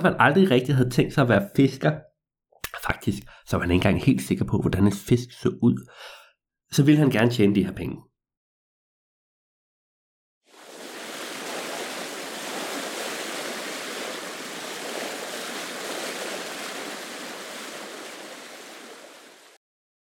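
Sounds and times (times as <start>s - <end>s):
speech: 0.0s - 2.1s, 2.8s - 8.1s
ocean waves and rushing water as a fishing cutter sails out to sea: 10.5s - 19.6s.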